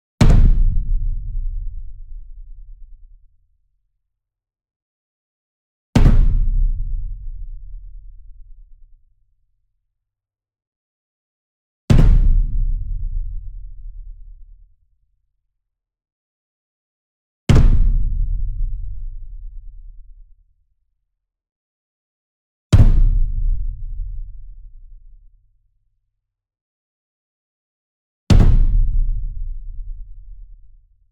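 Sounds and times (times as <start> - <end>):
42 inch concert bass drum flam with hard beater: 0.2 - 2.0, 6.0 - 7.0, 11.9 - 13.3, 17.5 - 18.4, 22.8 - 24.1, 28.3 - 30.1.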